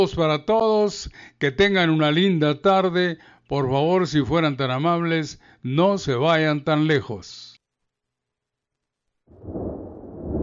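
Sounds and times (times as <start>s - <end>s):
speech: 0.0s - 7.5s
deep low thunder rumbling: 9.3s - 10.4s.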